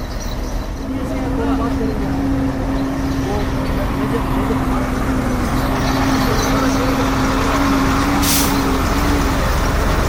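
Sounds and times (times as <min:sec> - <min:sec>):
heavy truck engine rumbling: 0:00.0 - 0:10.0
truck air brake hiss: 0:08.2 - 0:08.6.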